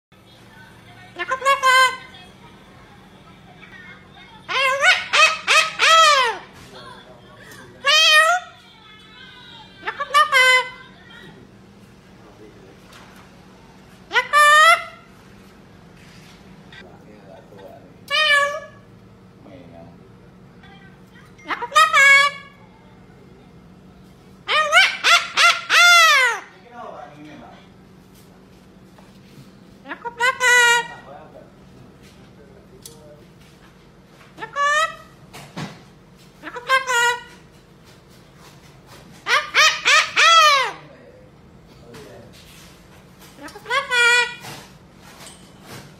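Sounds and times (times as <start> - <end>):
red cockatoo calling: 1.1 - 2.4, 3.9 - 6.7, 7.5 - 8.7, 9.3 - 11.3, 14.0 - 15.2, 18.0 - 18.9, 21.4 - 22.9, 24.4 - 26.7, 29.8 - 31.1, 34.3 - 35.2, 36.4 - 37.6, 38.4 - 41.0, 43.2 - 44.7.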